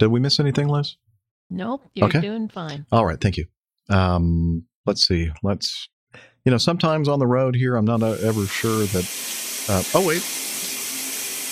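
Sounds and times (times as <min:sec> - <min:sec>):
speech: 0:00.0 - 0:10.4
indistinct voice sounds: 0:02.0 - 0:03.3
shower water running: 0:08.0 - 0:11.5.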